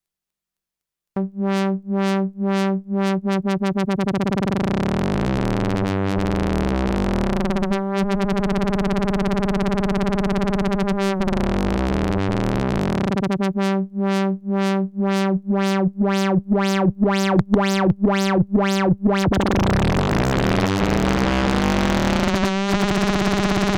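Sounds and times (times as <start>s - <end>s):
FM synthesizer tone without and with resonance: 1.2s - 23.7s.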